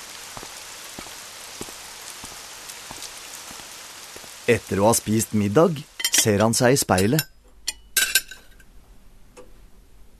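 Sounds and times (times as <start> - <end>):
steady rain: 0.0 - 7.2
speech: 4.5 - 7.3.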